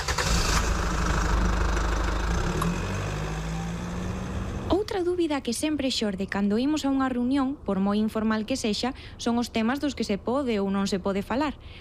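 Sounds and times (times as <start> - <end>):
car engine running: 0.1 - 4.8
speech: 5.0 - 11.7.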